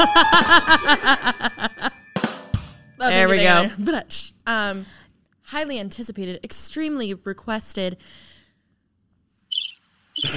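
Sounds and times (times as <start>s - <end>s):
speech: 0.0s - 1.2s, 3.3s - 8.3s
laughter: 0.0s - 2.0s
shrill high-pitched cricket chirping sound effect: 9.5s - 10.3s.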